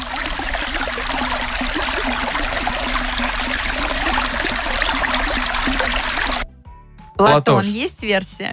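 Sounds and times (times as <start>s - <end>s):
river flowing through a forest: 0.0s - 6.4s
speech: 7.2s - 8.5s.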